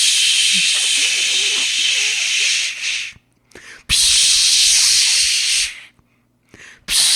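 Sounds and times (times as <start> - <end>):
voice imitating a spray can with a long nozzle spraying into a bee nest: 0.0 - 3.2, 3.9 - 5.9, 6.9 - 7.1.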